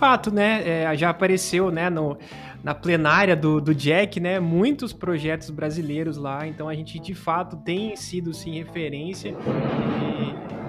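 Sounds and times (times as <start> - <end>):
speech: 0.0 - 10.4
deep rumble of nearby thunder: 9.3 - 10.6.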